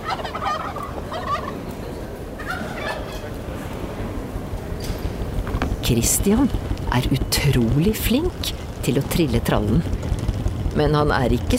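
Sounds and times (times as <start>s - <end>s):
turkey gobbling: 0.0s - 3.5s
steady low rumble of noise: 0.0s - 11.5s
speech: 5.9s - 10.2s, 10.8s - 11.5s.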